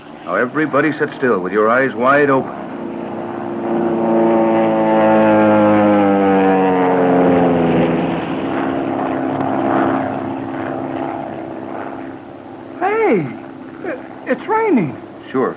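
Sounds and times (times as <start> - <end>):
propeller plane diving low overhead: 0.0 - 15.5
speech: 0.3 - 2.7.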